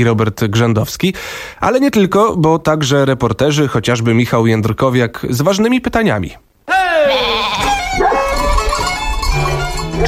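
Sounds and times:
speech: 0.0 - 6.5
flock of sheep bleating: 6.7 - 8.9.

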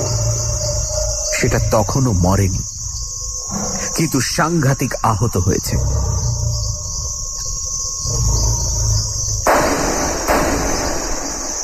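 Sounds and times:
crickets and insects chirring at night: 0.0 - 11.6
speech: 1.4 - 2.7, 3.5 - 6.1
gunshots fired at a wounded lion at night: 9.5 - 11.6.

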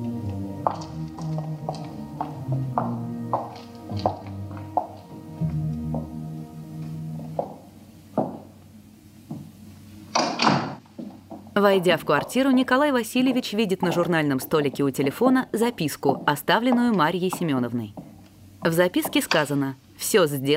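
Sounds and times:
low steady hum: 0.0 - 20.5
apartment door closing: 10.1 - 11.2
speech: 11.6 - 18.0, 18.6 - 20.5.

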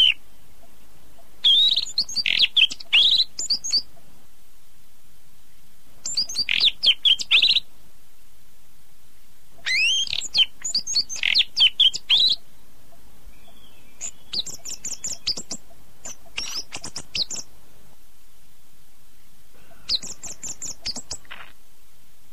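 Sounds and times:
Oriental magpie-robin chirping and twittering: 1.4 - 3.9, 6.0 - 7.6, 9.6 - 12.4, 13.4 - 17.5, 19.8 - 21.5.

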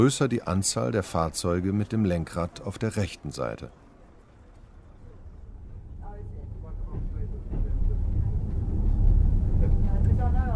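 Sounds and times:
speech: 0.0 - 3.8
Trans-Siberian Railway train setting off: 4.3 - 10.5.

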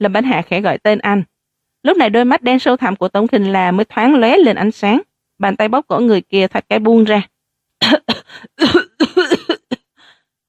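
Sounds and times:
speech: 0.0 - 8.8
man coughing violently after being released from a chokehold: 7.8 - 9.9.

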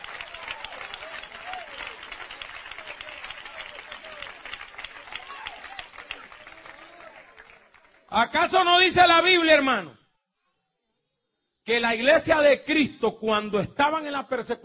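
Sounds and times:
congregation applauding: 0.0 - 8.6
crowd noise: 0.0 - 8.7
speech: 8.2 - 10.0, 11.7 - 14.6.

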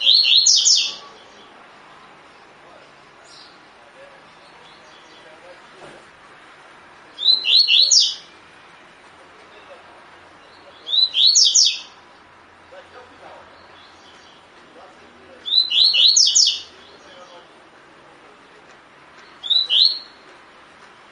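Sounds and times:
double-collared seedeater singing a phrase of clear high whistles: 7.2 - 8.2, 10.9 - 11.9, 15.4 - 16.7, 19.4 - 20.2.

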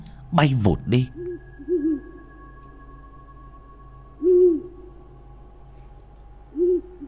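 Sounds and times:
faint steady hum: 0.0 - 7.0
speech: 0.3 - 1.2
scops owl perched atop a broken bamboo stalk hooting mournfully: 1.1 - 5.2, 6.5 - 7.0.

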